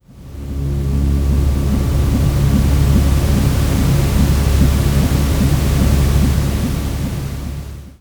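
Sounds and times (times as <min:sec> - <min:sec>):
sleep music mix: 0:00.1 - 0:07.9.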